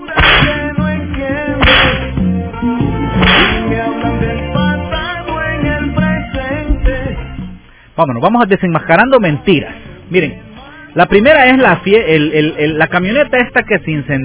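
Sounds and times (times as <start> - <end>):
steady music: 0.0 - 14.2
sharp whip cracks: 0.2 - 0.6, 1.6 - 2.1, 3.2 - 3.6
speech: 8.0 - 14.2.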